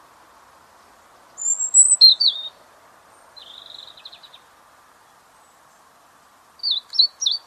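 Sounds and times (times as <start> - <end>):
faint background hiss: 0.0 - 7.4
European robin Erithacus rubecula song: 1.4 - 2.6, 3.4 - 4.4, 6.6 - 7.4.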